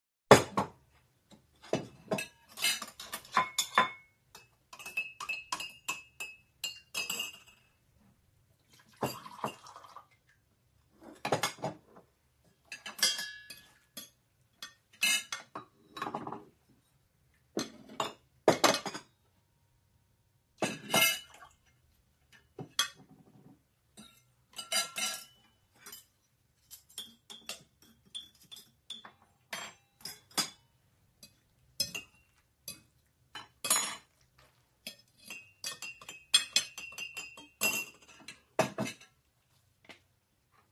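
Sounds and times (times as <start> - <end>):
dishes clattering in background: 1.4 - 7.8, 8.9 - 9.8, 11.0 - 12.0, 12.6 - 16.6, 17.5 - 19.1, 20.6 - 21.5, 22.4 - 30.6, 31.2 - 34.2, 34.8 - 39.2.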